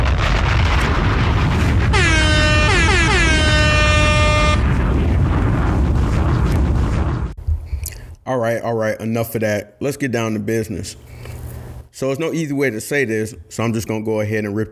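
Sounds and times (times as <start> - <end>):
continuous roaring explosion-like rumble: 0.0 - 8.0
air horn sound effects blasting: 1.9 - 4.7
speech: 8.4 - 11.3, 12.0 - 14.7.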